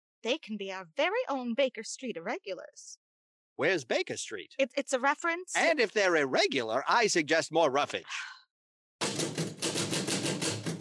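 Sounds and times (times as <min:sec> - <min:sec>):
speech: 0:00.2 - 0:03.0, 0:03.6 - 0:08.4
rapid typing on keys: 0:09.0 - 0:10.8.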